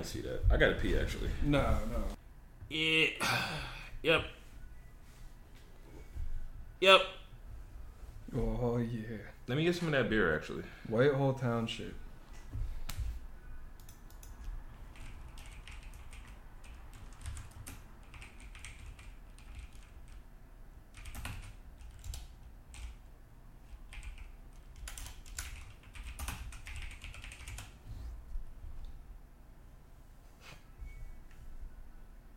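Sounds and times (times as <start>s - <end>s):
speech: 0.0s - 4.4s, 6.8s - 7.2s, 8.3s - 12.0s
typing on a computer keyboard as a search is entered: 13.8s - 20.2s, 20.9s - 23.0s, 23.9s - 27.8s.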